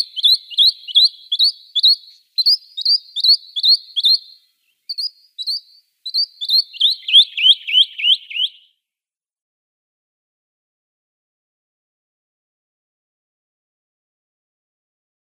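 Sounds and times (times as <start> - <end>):
rock nuthatch song with loud upslurred whistled notes: 0.0 - 8.8.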